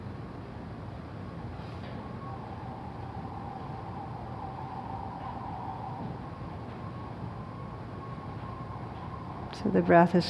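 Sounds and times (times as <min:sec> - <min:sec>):
distant emergency vehicle siren wailing: 0:00.2 - 0:10.2
speech: 0:09.6 - 0:10.2.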